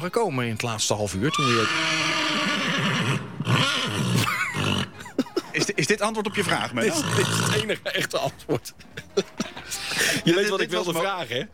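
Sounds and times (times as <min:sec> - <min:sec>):
speech: 0:00.0 - 0:03.3, 0:05.6 - 0:11.5
horse at a riding school in Den Hoorn neighing: 0:01.2 - 0:05.2, 0:06.1 - 0:07.8
laughter: 0:04.2 - 0:11.0.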